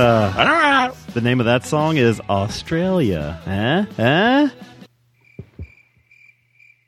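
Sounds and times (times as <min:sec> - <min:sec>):
speech: 0:00.0 - 0:04.8
cricket chirping: 0:05.2 - 0:06.8
soft low thumps: 0:05.4 - 0:06.0.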